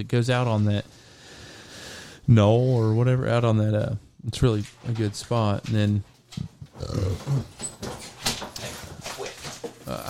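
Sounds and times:
speech: 0.0s - 1.1s, 2.3s - 7.9s, 9.9s - 10.0s
dog growling and grunting: 6.7s - 7.6s.

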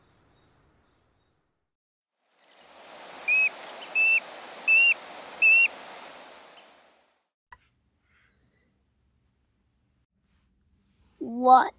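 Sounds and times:
hiss: 2.4s - 7.1s
sharp-shinned hawk kek calls: 3.2s - 6.6s
person speaking: 11.2s - 11.7s.

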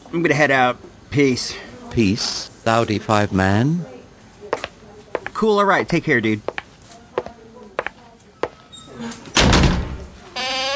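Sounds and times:
speech: 0.1s - 3.9s, 5.4s - 6.5s
loud heavy door slam with a rumbling impact: 9.3s - 10.7s
brief high-pitched creak or squeal: 10.3s - 10.7s.

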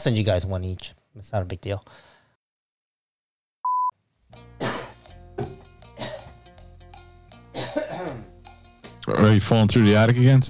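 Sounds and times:
speech: 0.0s - 2.1s, 9.1s - 10.4s
short electronic beep: 3.6s - 3.9s
person coughing with strained raspy exhales: 4.6s - 5.0s, 6.0s - 6.4s, 7.6s - 8.3s.

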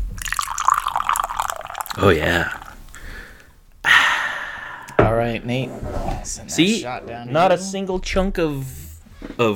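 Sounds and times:
energy drink pouring from a can into a glass: 0.2s - 2.9s
energy drink fizzing and bubbling: 0.2s - 3.1s
speech: 2.0s - 2.6s, 5.3s - 8.8s, 9.4s - 9.5s.

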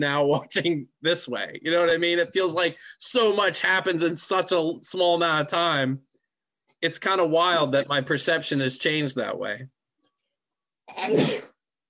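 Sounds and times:
speech: 0.0s - 6.1s, 6.8s - 9.8s, 10.9s - 11.5s
sneeze: 10.9s - 11.6s.

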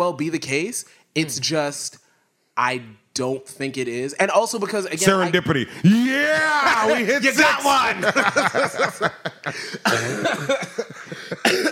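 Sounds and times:
speech: 0.1s - 2.0s, 2.6s - 11.7s
laughter: 5.0s - 11.7s
harsh raspy coughing: 9.4s - 11.7s.

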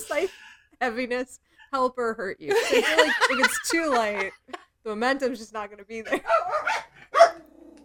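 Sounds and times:
speech: 0.2s - 6.6s
laughter: 2.5s - 4.6s
dog barking: 6.1s - 7.5s.

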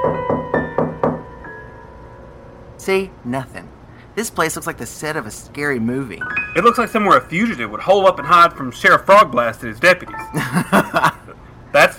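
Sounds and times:
firm knocks on a wooden door: 0.0s - 1.3s
speech: 2.8s - 11.2s
laughter: 10.2s - 11.4s.

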